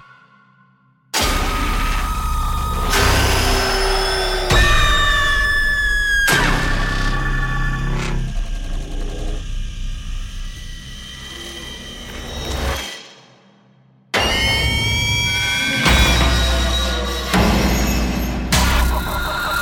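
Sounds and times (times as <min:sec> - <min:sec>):
horror jumpscare sound effects: 0:01.1 - 0:09.7, 0:14.1 - 0:19.6.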